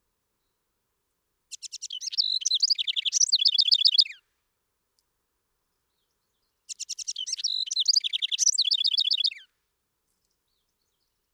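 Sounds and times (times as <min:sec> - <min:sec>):
House wren song with bubbly chattering trills: 0:01.5 - 0:04.2, 0:05.9 - 0:09.5.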